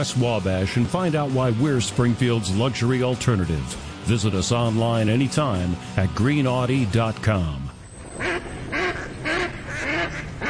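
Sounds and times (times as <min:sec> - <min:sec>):
speech: 0:00.0 - 0:07.7
ducks quacking with nasal calls: 0:08.1 - 0:10.4.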